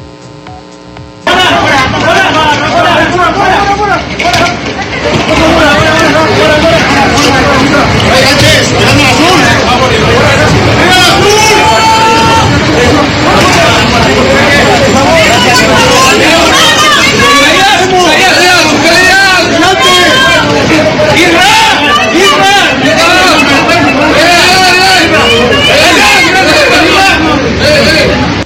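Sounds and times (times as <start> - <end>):
crowd hubbub and chatter as a national football team arrives at its hotel in Puebla: 0.0 - 28.4.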